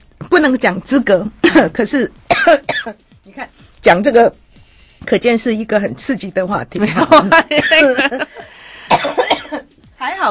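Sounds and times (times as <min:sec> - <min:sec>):
speech: 0:00.4 - 0:04.4, 0:05.0 - 0:09.2, 0:10.0 - 0:10.3
person coughing harshly: 0:01.4 - 0:01.7, 0:02.3 - 0:03.0, 0:07.5 - 0:08.0, 0:08.8 - 0:09.7
laughter: 0:06.8 - 0:08.6.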